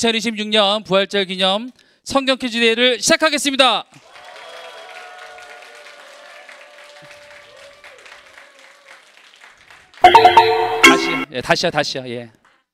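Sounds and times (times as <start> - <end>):
speech: 0.0 - 4.1, 11.3 - 12.4
crowd cheering and applauding: 4.0 - 11.2.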